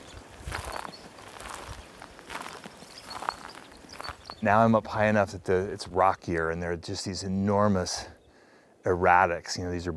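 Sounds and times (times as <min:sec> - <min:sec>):
footsteps crunching along a rocky mountain trail among pines and glacial boulders: 0:00.0 - 0:04.5
faint outdoor ambience: 0:00.0 - 0:09.9
speech: 0:04.4 - 0:08.2, 0:08.8 - 0:09.9.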